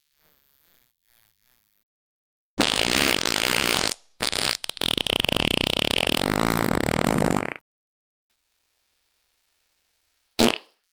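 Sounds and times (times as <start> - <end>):
wet fart sound effects: 2.6 - 7.6, 10.4 - 10.8.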